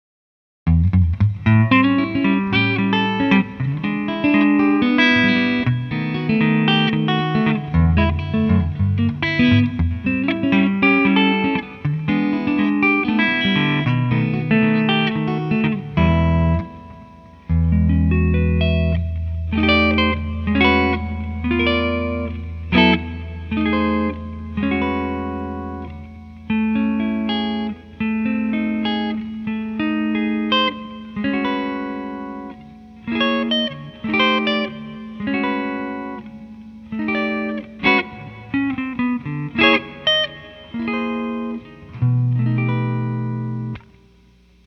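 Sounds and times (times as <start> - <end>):
archtop electric guitar: 0.7 - 44.6.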